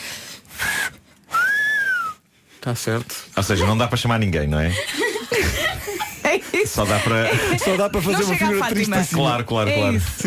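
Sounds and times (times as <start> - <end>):
soft breathy mouth whistling: 0.6 - 2.3
speech: 2.6 - 10.2
laughter: 4.6 - 9.0.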